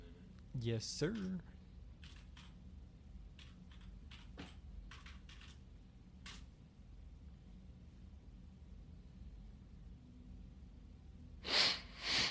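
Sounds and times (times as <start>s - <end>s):
speech: 0.6s - 1.5s
person sniffling: 11.4s - 12.2s.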